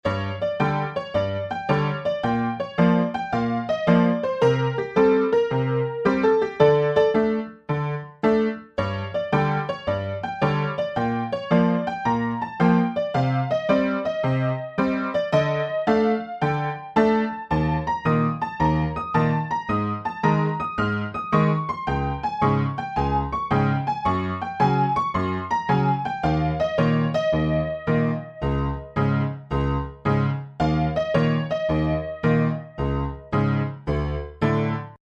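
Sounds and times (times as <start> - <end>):
wired piano: 0.0 - 35.0.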